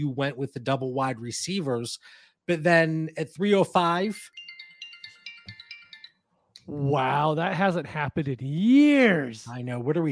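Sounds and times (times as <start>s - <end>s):
speech: 0.0s - 4.4s, 6.7s - 10.0s
smartwatch ringing for an incoming call: 3.9s - 6.3s.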